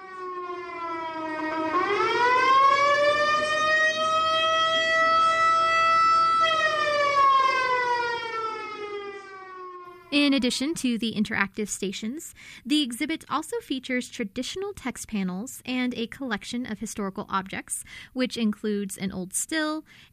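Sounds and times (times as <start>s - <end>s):
1960s mechanical police car siren wailing: 0.0s - 10.2s
speech: 10.3s - 20.1s.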